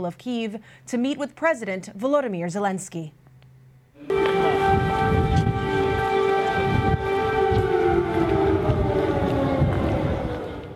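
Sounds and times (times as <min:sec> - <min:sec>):
speech: 0:00.0 - 0:03.2
rumble of noise in central Kyiv: 0:03.7 - 0:10.7
loud air raid siren wailing outdoors in central Kyiv, Ukraine: 0:04.0 - 0:10.7.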